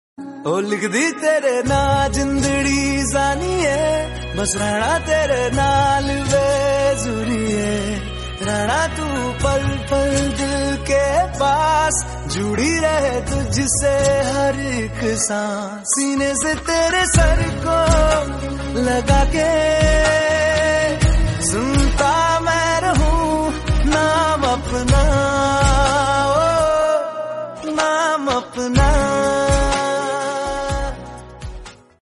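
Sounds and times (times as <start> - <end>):
Hindi romantic song: 0.2 - 32.0.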